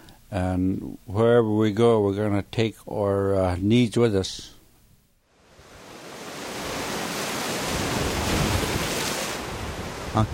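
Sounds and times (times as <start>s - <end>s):
speech: 0.3s - 4.6s, 10.2s - 10.3s
crashing surf: 5.4s - 10.3s
strong gusting wind: 5.4s - 10.3s.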